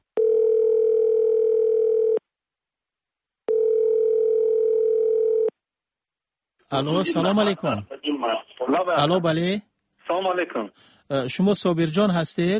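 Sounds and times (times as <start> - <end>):
telephone line tones as an outgoing call is placed: 0.2 - 2.2, 3.5 - 5.5
speech: 6.7 - 12.5.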